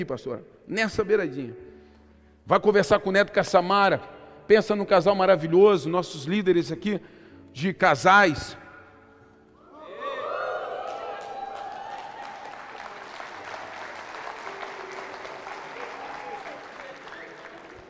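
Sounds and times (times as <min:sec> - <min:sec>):
speech: 0:00.0 - 0:01.7, 0:02.4 - 0:08.6
voices cheering: 0:09.6 - 0:17.8
audience applause: 0:09.9 - 0:17.8.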